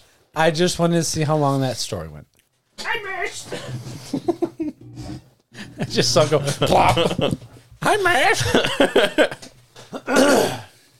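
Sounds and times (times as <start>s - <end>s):
speech: 0.4s - 4.1s, 5.0s - 10.6s
laughter: 3.9s - 7.6s, 8.4s - 9.5s
two people coughing and clearing their throats: 9.8s - 10.7s.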